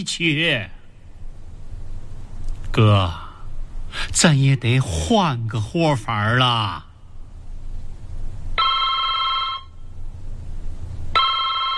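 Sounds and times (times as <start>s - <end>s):
speech: 0.0s - 0.8s, 2.8s - 3.2s, 3.9s - 6.9s
low hum: 0.0s - 11.7s
telephone ringing: 8.6s - 9.8s, 11.2s - 11.7s.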